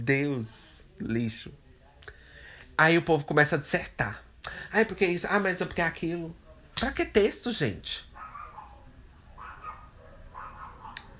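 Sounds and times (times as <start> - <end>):
speech: 0.0 - 1.6, 2.8 - 8.1
dogs barking and yelping: 8.1 - 11.1.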